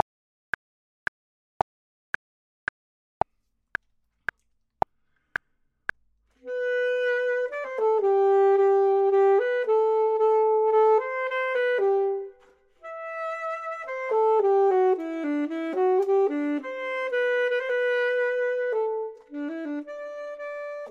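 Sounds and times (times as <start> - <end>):
clarinet: 6.4 - 20.8
saxophone: 6.4 - 20.8.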